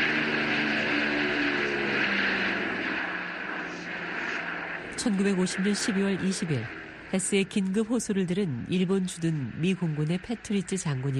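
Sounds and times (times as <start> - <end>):
C-54 Skymaster transport formation propeller engines droning overhead: 0.0 - 11.1
speech: 5.0 - 11.1.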